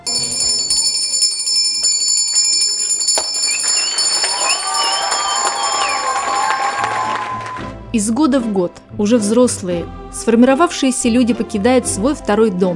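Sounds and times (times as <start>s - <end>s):
school bell ringing at a last-bell ceremony: 0.0s - 7.5s
crowd noise: 3.4s - 7.6s
speech: 7.9s - 12.7s.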